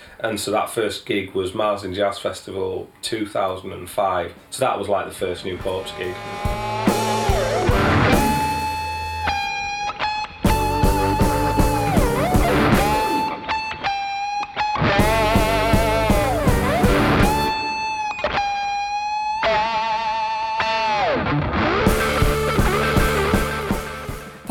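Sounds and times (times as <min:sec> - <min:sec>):
speech: 0:00.2 - 0:06.6
steady rock band rhythm section: 0:05.6 - 0:19.2, 0:21.6 - 0:24.5
loud distorted electric guitar solo with bending notes: 0:05.9 - 0:24.5.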